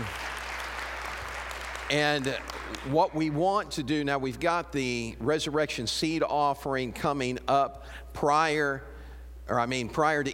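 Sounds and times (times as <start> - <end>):
roomful of people applauding: 0.0 - 2.9
speech: 1.9 - 8.9, 9.5 - 10.3.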